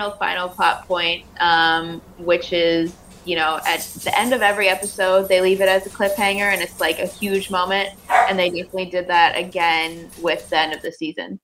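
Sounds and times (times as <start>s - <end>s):
speech: 0.0s - 11.4s
dog barking: 8.1s - 8.4s.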